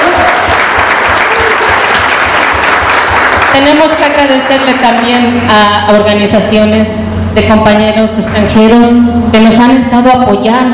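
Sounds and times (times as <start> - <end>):
crowd applauding at a public hearing: 0.0 - 5.2
speech: 3.6 - 10.7.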